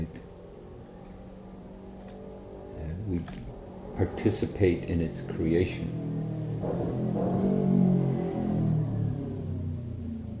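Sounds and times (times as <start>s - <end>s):
motorcycle engine revving: 0.0s - 10.3s
speech: 3.1s - 7.8s.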